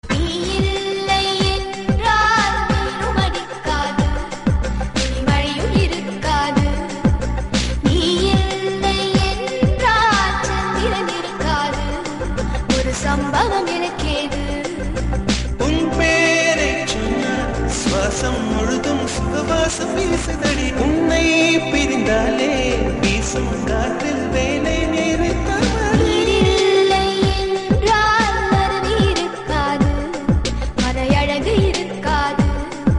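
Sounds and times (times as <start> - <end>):
Tamil song: 0.2 - 32.0.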